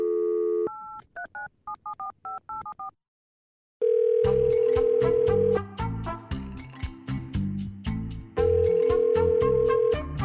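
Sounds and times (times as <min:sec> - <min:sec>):
telephone dial tone: 0:00.0 - 0:01.0, 0:03.8 - 0:05.5, 0:08.4 - 0:10.0
loud rhythmic music: 0:04.4 - 0:10.2.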